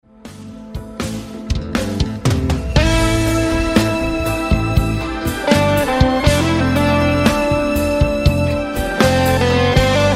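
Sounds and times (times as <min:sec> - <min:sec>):
fighting game round start music: 0:00.8 - 0:10.0.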